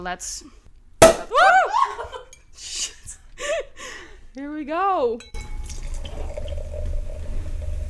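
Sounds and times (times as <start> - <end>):
speech: 0.0 - 0.6, 2.6 - 3.0, 4.4 - 5.4
champagne cork popping: 1.0 - 1.6
champagne pouring into a glass: 5.5 - 7.3.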